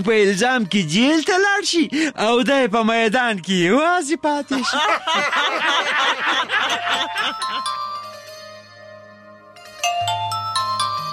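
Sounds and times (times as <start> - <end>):
speech: 0.0 - 7.8
people chuckling: 4.6 - 7.7
telephone ringing with bright chiming notes: 6.5 - 11.1.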